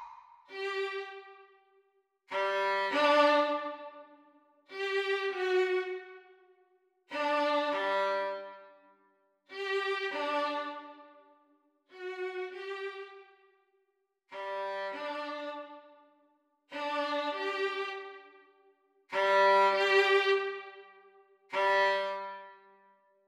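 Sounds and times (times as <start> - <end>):
violin duet exam speed: 0.5 - 1.6, 2.3 - 6.4, 7.1 - 8.7, 9.5 - 11.2, 11.9 - 13.3, 14.3 - 16.0, 16.7 - 18.4, 19.1 - 22.6.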